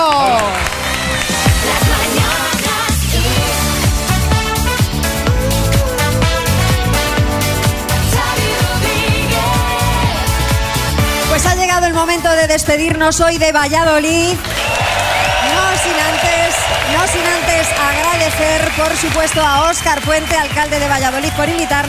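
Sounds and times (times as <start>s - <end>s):
audience applause in Valladolid: 0.0s - 2.9s, 14.4s - 21.8s
rhythmic music-like sound: 0.0s - 21.8s
speech: 12.5s - 14.8s, 18.3s - 21.8s.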